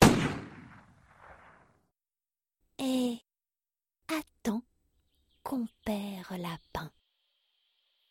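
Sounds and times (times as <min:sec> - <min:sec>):
rifle gunshot: 0:00.0 - 0:01.6
speech: 0:04.1 - 0:04.7, 0:05.5 - 0:07.0.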